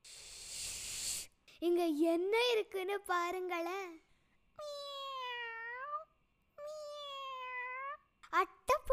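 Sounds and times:
speech: 1.6 - 4.0
kittens in a box meowing: 4.6 - 6.0, 6.6 - 8.0.

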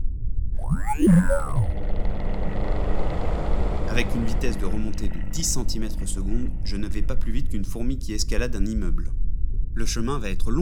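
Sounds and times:
swooping warbling tones: 0.6 - 8.3
speech: 0.7 - 1.8, 4.0 - 9.2, 9.8 - 10.5.

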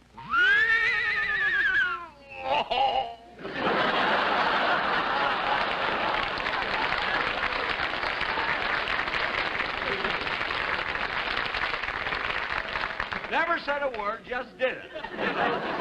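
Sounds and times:
man imitating an English horse's whinny: 0.2 - 3.2
audience laughter: 3.4 - 11.1, 14.9 - 15.7
audience applause: 3.7 - 14.1.

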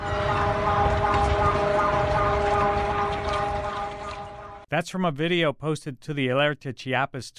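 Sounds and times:
rough outdoor rumble: 0.0 - 4.6
earthquake warning siren blaring: 0.0 - 4.7
speech: 4.8 - 7.3.

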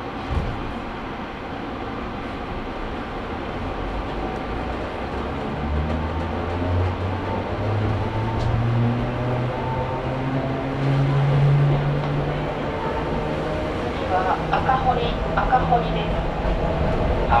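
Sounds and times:
express train wheels rumbling inside the cabin: 0.1 - 17.3
single thump: 0.3 - 0.8.

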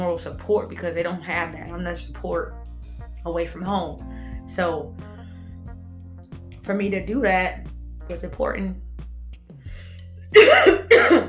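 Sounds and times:
speech: 0.0 - 5.1, 6.7 - 8.8
harsh coughs: 10.4 - 11.2.

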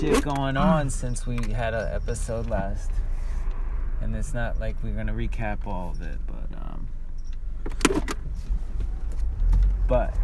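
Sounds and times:
car gear shifter rattling and clicking while driving: 0.0 - 2.5, 7.2 - 8.3
speech: 0.0 - 3.1, 4.0 - 7.0, 7.6 - 8.2, 9.9 - 10.2
car road and engine rumble: 0.0 - 10.2.

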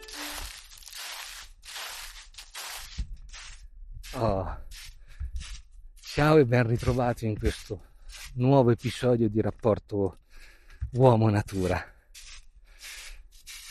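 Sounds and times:
footsteps crunching and rustling through dry leaves: 0.0 - 3.5
speech: 4.1 - 4.6, 6.2 - 10.2, 10.9 - 11.9.

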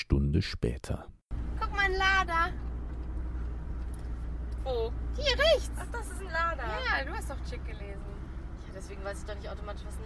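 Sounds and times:
speech: 0.1 - 1.1, 1.9 - 2.7, 4.6 - 10.0
car engine and road rumble inside a moving car: 0.5 - 10.0.

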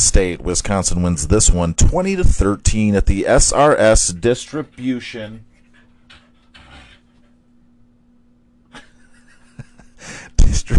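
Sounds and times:
speech: 0.0 - 5.5
dog panting excitedly: 4.0 - 7.4
dog snuffling: 4.5 - 7.4.

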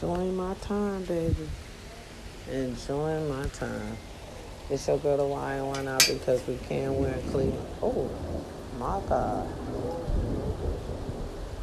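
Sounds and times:
speech: 0.0 - 1.7, 2.5 - 4.1, 4.7 - 10.2
constant wash of rain: 0.0 - 11.6
thunder rumbling during a rainstorm: 4.7 - 11.6.

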